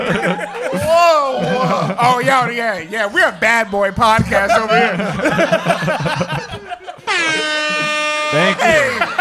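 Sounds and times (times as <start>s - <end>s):
laughter: 0.0s - 2.8s, 4.0s - 9.2s
speech: 0.1s - 6.5s, 8.3s - 9.1s
air horn blasts sound effect: 7.1s - 8.9s.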